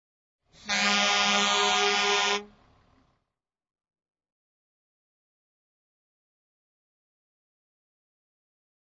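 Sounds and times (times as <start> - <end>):
fire truck air horn: 0.5 - 2.8.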